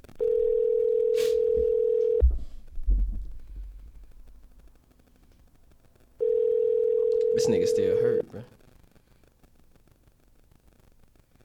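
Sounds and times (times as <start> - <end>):
outgoing phone call ringback tone ringing unanswered: 0.2 - 2.2, 6.2 - 8.2
speech: 8.4 - 8.7.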